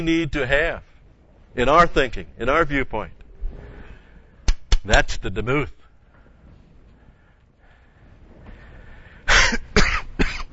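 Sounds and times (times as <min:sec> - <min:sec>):
speech: 0:00.0 - 0:00.9, 0:01.5 - 0:03.2, 0:04.8 - 0:05.8
person coughing into uncovered microphone: 0:09.3 - 0:10.5.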